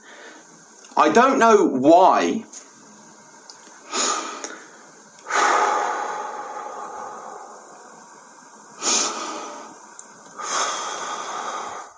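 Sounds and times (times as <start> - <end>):
heavy ragged breathing with gasping inhales: 0.0 - 0.5, 3.8 - 8.2, 8.8 - 11.9
speech: 1.0 - 2.6.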